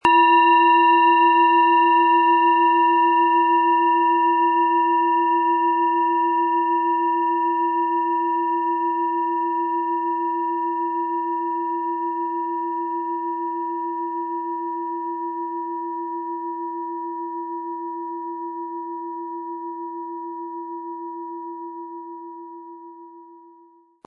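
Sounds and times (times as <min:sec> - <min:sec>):
13.5 cm planet singing bowl struck with mallet: 0:00.0 - 0:14.8.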